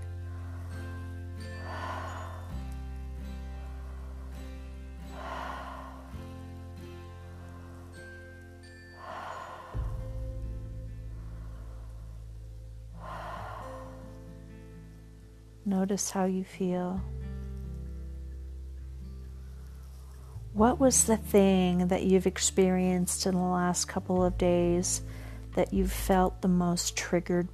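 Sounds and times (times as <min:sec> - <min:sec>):
slow deep breathing in and out: 0:00.0 - 0:14.9, 0:25.1 - 0:25.5
soft sustained musical drone shifting chords: 0:00.0 - 0:27.5
speech: 0:15.7 - 0:17.1, 0:20.6 - 0:27.5.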